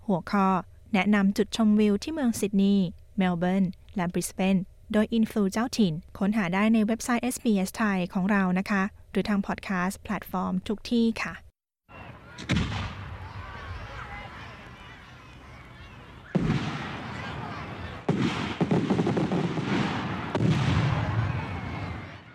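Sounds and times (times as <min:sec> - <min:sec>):
speech: 0:00.1 - 0:11.4, 0:12.4 - 0:12.8
crowd noise: 0:11.9 - 0:18.7, 0:19.9 - 0:22.3
New Year's Eve fireworks bursting with booms and crackling: 0:12.3 - 0:13.9, 0:16.3 - 0:22.3.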